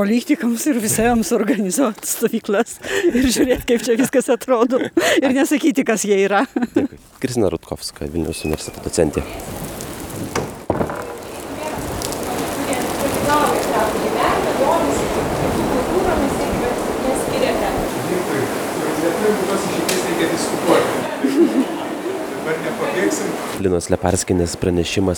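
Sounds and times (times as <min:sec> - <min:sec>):
speech: 0:00.0 - 0:09.6, 0:20.2 - 0:21.8, 0:22.5 - 0:25.1
laughter: 0:02.8 - 0:05.4, 0:06.3 - 0:07.0, 0:12.8 - 0:23.6
rain drumming on a farmstead barn: 0:06.9 - 0:25.1.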